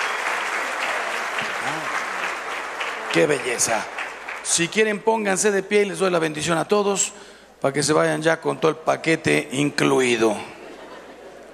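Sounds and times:
audience applause at a university conference: 0.0 - 4.9
speech: 1.6 - 2.0, 3.1 - 10.6
laughter: 10.5 - 11.5.

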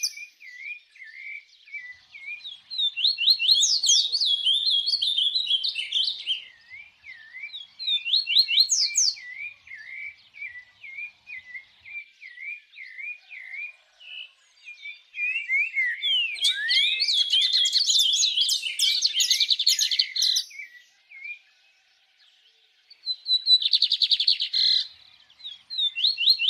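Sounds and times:
bird whistling short slurred whistles: 0.0 - 13.7, 14.8 - 21.4, 23.0 - 26.4
bird chirping phrase: 0.0 - 26.4.

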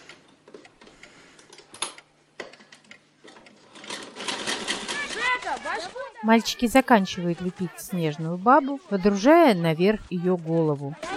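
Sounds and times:
sewing machine running: 3.6 - 9.2
speech: 5.8 - 11.0.

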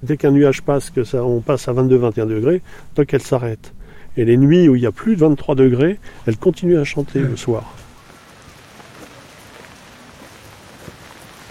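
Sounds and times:
speech: 0.0 - 7.8
rain falling outdoors: 6.8 - 11.4.

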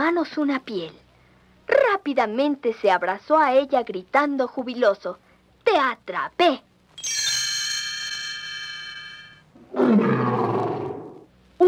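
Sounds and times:
speech: 0.1 - 1.0, 1.7 - 7.2, 9.8 - 10.4
mother bear roaring in a cave: 9.6 - 11.3.

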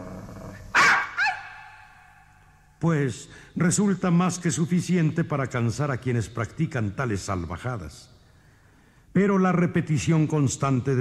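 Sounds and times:
dog growling low: 0.0 - 0.8
dog barking sharply: 0.7 - 2.3
speech: 2.8 - 8.1, 9.2 - 10.9.

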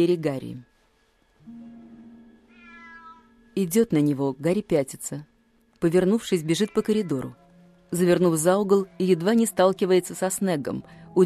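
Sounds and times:
speech: 0.0 - 0.7, 3.6 - 11.2
cat meowing in a corridor: 2.4 - 3.5, 6.4 - 7.4.

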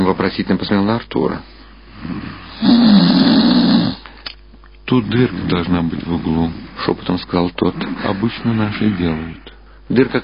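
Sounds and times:
speech: 0.1 - 3.2, 4.9 - 10.2
snoring behind gauze netting: 2.0 - 4.1.

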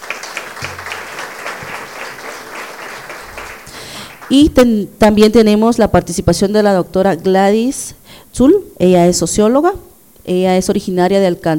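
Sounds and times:
audience applause at a forum on freedom of expression in Guatemala: 0.0 - 4.5
speech: 4.3 - 11.5.

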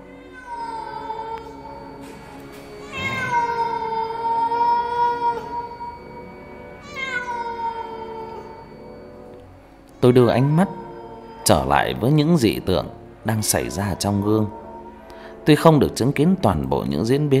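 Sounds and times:
limping black cat meowing: 0.0 - 2.1, 2.7 - 8.8, 10.0 - 11.8
speech: 10.1 - 10.8, 11.5 - 14.6, 15.4 - 17.3.

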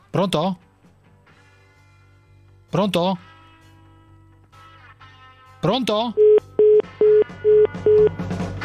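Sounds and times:
speech: 0.1 - 0.6, 2.7 - 3.3, 5.6 - 6.3, 7.4 - 8.5
telephone line beeps after the called person hangs up: 6.2 - 8.1.

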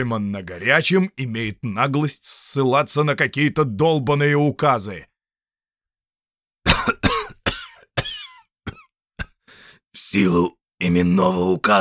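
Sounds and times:
speech: 0.0 - 5.1, 10.0 - 11.7
raspy coughing and throat clearing: 6.7 - 9.5.

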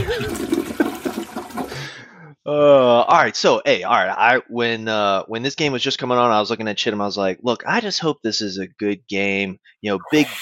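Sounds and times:
toilet flushing: 0.0 - 2.0
speech: 2.5 - 10.4.

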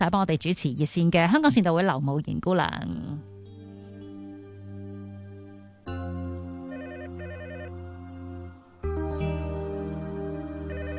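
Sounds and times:
sustained layered tonal backdrop: 0.0 - 10.9
speech: 0.1 - 3.3
telephone ringing with an electronic warbling trill: 6.7 - 7.8, 10.7 - 10.9.

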